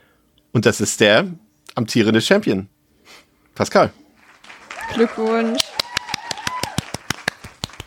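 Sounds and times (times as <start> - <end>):
speech: 0.5 - 4.0, 4.9 - 5.6
hands clapping applauding the winner of a game: 4.2 - 7.8.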